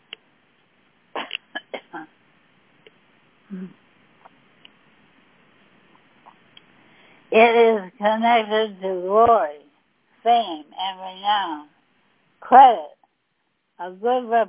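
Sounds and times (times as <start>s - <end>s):
person dry coughing: 1.2s - 2.1s
speech: 3.5s - 3.8s, 7.4s - 9.6s, 10.2s - 11.7s, 12.5s - 12.9s, 13.8s - 14.4s.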